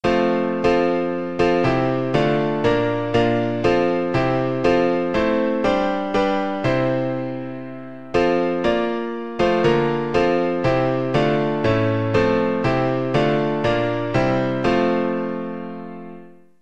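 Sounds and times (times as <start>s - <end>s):
piano piece: 0.0s - 16.6s.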